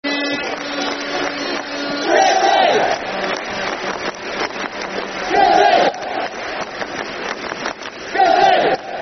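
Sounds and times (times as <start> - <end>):
crowd clapping: 0.1 - 9.0
football crowd chanting: 1.2 - 3.6, 5.0 - 6.8, 8.0 - 9.0.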